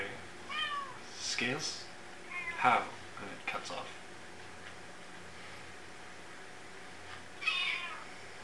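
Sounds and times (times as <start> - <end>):
cat meowing: 0.5 - 1.0, 2.3 - 2.6, 7.4 - 8.1
speech: 1.4 - 1.9, 2.6 - 4.0.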